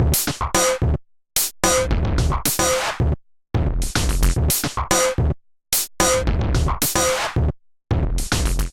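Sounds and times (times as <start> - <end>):
MIDI drum kit groove at 110 bpm: 0.0 - 8.7.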